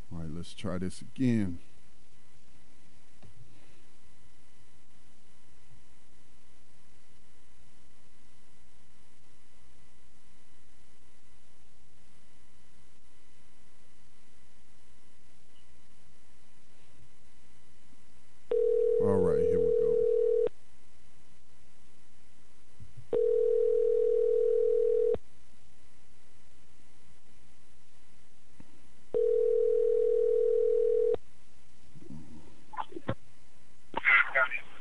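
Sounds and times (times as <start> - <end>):
faint hiss: 0.0 - 34.7
speech: 0.4 - 1.7
telephone dial tone: 18.5 - 19.0, 19.6 - 20.5, 23.1 - 25.2, 29.2 - 31.2.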